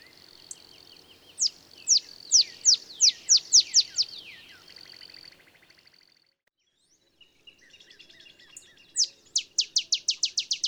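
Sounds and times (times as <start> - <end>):
steady faint high hiss: 0.0 - 5.5
male olive sparrow singing bright down-slurred chips in Texas: 0.0 - 10.6.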